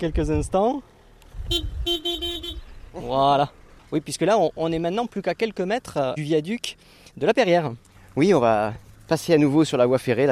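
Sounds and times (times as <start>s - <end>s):
speech: 0.0s - 0.9s, 1.5s - 10.3s
car engine rumble on a quiet countryside road: 0.0s - 10.3s
quick car horn toots: 1.4s - 2.8s.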